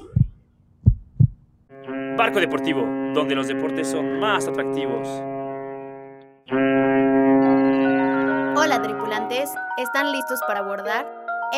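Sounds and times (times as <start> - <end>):
deep heartbeat thumps: 0.0 - 1.5
bright sustained tonal sound: 1.8 - 11.5
speech: 2.2 - 5.3, 9.8 - 11.5.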